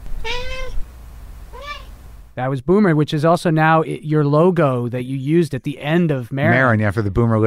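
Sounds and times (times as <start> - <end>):
cat meowing into microphone: 0.2 - 0.8, 1.5 - 2.0
speech: 2.4 - 7.4.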